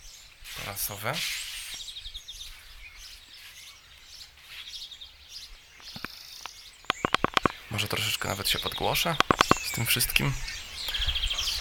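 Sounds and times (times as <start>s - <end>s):
several birds chirping and trilling on a village terrace: 0.0s - 11.5s
speech: 0.7s - 1.4s, 7.8s - 10.6s
sharp clicks and knocks: 5.8s - 9.8s.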